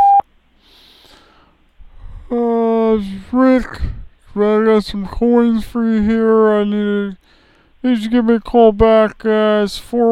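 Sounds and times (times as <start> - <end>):
loud steady sustained voicemail beep: 0.0 - 0.2
short electronic voicemail tone: 0.0 - 0.2
faint breathy noises: 0.6 - 2.5
speech: 3.0 - 10.1.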